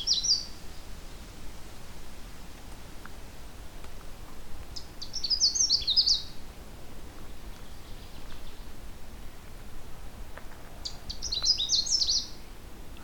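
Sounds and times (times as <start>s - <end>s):
male Canada Warbler singing along a trail through a swamp: 0.0s - 1.2s, 4.7s - 6.5s, 7.2s - 9.0s, 10.6s - 13.0s
faint hiss: 0.0s - 13.0s.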